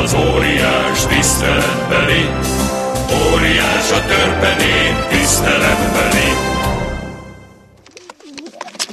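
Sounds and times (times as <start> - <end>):
speech: 0.1 - 6.5
carrier pigeon cooing on a tree branch: 7.9 - 8.9.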